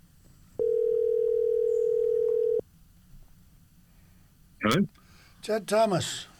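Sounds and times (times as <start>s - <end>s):
quiet hum: 0.0s - 6.3s
electronic ringing tone of an outgoing phone call: 0.6s - 2.6s
speech: 4.7s - 6.3s.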